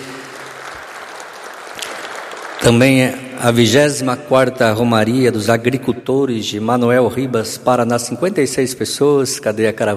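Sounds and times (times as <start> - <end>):
audience applauding at a Catholic pilgrimage gathering: 0.0 - 3.3
speech: 2.6 - 9.9.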